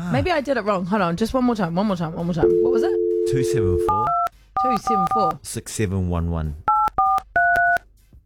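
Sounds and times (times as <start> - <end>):
speech: 0.1 - 6.7
telephone keypad dialing tones: 2.4 - 5.4, 6.7 - 7.8.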